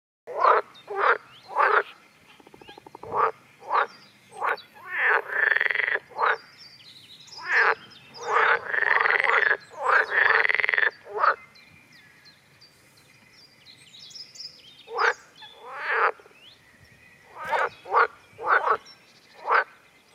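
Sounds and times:
water frog croaking: 0:00.3 - 0:06.5, 0:07.4 - 0:11.4, 0:14.9 - 0:16.3, 0:17.3 - 0:18.8, 0:19.4 - 0:19.8.

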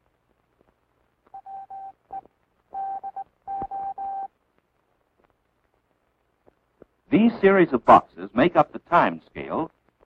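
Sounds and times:
Morse code telegraph tone beeps: 0:01.4 - 0:04.3
speech: 0:07.1 - 0:09.8.

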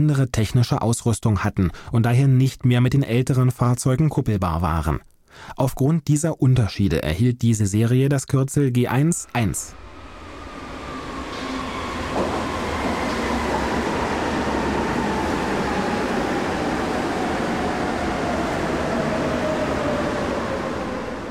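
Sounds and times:
speech: 0:00.0 - 0:09.9
Berlin U-Bahn G1 subway train running past: 0:09.2 - 0:21.2.

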